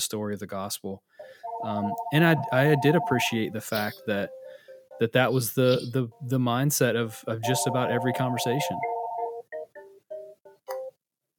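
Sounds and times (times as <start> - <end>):
speech: 0.0 - 4.4, 5.0 - 8.9
phone ringing with a short melodic electronic tune: 1.3 - 5.9, 7.4 - 10.3.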